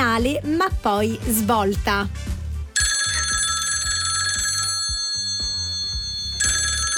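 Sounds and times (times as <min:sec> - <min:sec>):
speech: 0:00.2 - 0:02.4
phone ringtone with bright trilling ring: 0:02.8 - 0:06.9.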